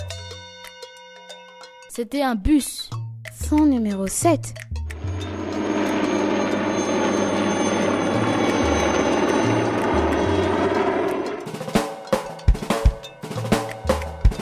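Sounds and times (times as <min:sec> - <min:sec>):
speech: 0:01.9 - 0:02.9, 0:03.5 - 0:04.6
helicopter roar with buzzing engine drone: 0:04.8 - 0:14.3.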